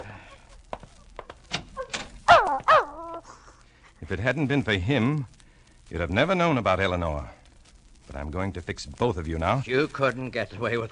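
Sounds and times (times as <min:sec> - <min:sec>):
dog barking: 0:01.8 - 0:03.2
speech: 0:04.1 - 0:07.4, 0:08.1 - 0:10.9.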